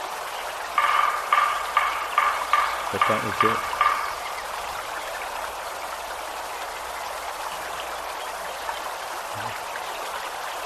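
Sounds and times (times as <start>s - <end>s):
forest ambience hiss: 0.0s - 10.6s
woodpecker calls: 0.6s - 5.4s
speech: 2.9s - 3.7s.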